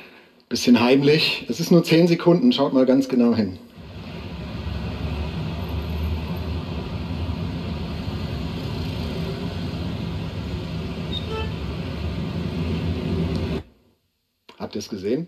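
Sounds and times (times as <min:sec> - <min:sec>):
speech: 0:00.5 - 0:03.7, 0:14.8 - 0:15.2
busy street traffic at an intersection in Indonesia: 0:03.7 - 0:13.6.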